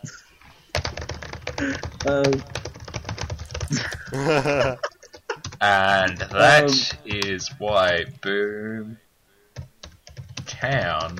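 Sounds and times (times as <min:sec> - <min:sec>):
rapid typing on a computer keyboard: 0:00.7 - 0:04.1, 0:05.0 - 0:06.4, 0:09.6 - 0:11.1
speech: 0:01.6 - 0:02.6, 0:03.7 - 0:04.9, 0:05.6 - 0:09.0, 0:10.6 - 0:11.1
laughter: 0:03.7 - 0:05.4.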